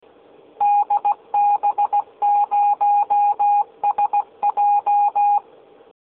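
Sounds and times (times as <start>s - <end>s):
morse code identification signal: 0.6s - 5.4s.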